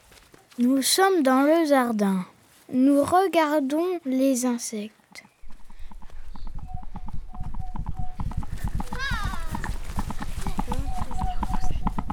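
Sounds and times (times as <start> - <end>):
speech: 0.6 - 5.3
hooves of a herd of centaurs arriving: 5.4 - 12.1.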